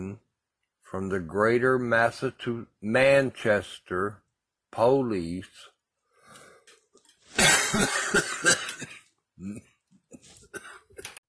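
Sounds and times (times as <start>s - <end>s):
speech: 0.9s - 5.7s, 7.4s - 11.2s
breaths: 6.0s - 6.9s
harsh coughing fit: 7.4s - 9.6s, 10.2s - 11.1s
quieter throat-clearing coughs: 7.4s - 11.2s.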